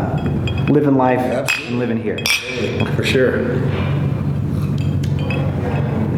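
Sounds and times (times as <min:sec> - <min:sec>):
glasses of bourbon clinking in a toast: 0:00.0 - 0:03.2, 0:04.6 - 0:06.1
speech: 0:00.7 - 0:04.0.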